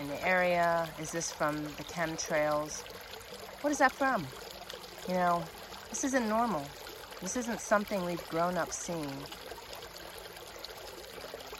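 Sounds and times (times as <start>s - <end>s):
flowing stream water carrying bubbles downstream: 0.0s - 11.5s
speech: 0.1s - 3.0s, 3.6s - 4.4s, 5.0s - 9.4s.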